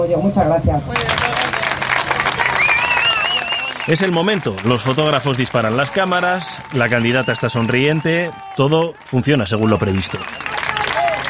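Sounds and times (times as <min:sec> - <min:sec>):
speech: 0:00.0 - 0:01.5, 0:03.9 - 0:10.6
large rally crowd applauding after a speech: 0:00.9 - 0:11.2
shrill whistle: 0:02.6 - 0:04.1, 0:07.0 - 0:08.3, 0:09.5 - 0:10.8.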